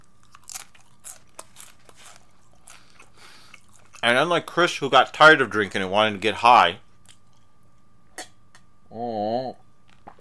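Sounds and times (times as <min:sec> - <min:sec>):
biting and crunching a nacho chip: 0:00.0 - 0:04.2
speech: 0:04.0 - 0:06.8.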